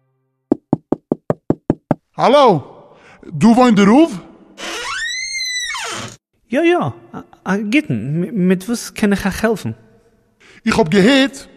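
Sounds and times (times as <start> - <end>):
knocking on the door of a house: 0.5 - 2.0
speech: 2.2 - 4.3, 6.5 - 9.8, 10.6 - 11.5.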